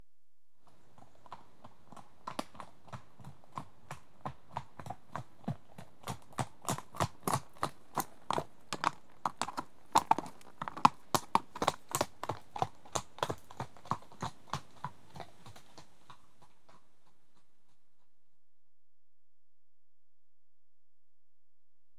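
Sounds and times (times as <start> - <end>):
one horse trotting on rough track: 0.7 - 18.1.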